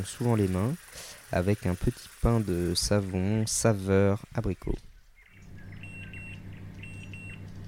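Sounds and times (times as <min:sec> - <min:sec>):
speech: 0:00.0 - 0:04.9
steady low hum: 0:00.1 - 0:07.6
oven timer beeping in high electronic tones: 0:05.6 - 0:07.6.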